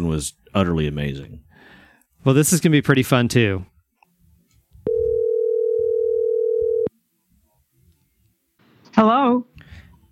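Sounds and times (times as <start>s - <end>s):
speech: 0.1s - 1.4s, 2.2s - 3.7s, 9.0s - 9.5s
telephone dial tone while placing a call: 4.9s - 6.9s.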